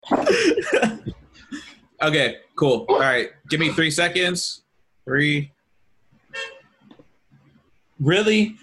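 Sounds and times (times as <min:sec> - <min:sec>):
laughter: 0:00.0 - 0:01.7
speech: 0:00.3 - 0:00.9, 0:02.0 - 0:05.6, 0:08.0 - 0:08.6
short car horn toot: 0:06.3 - 0:06.7.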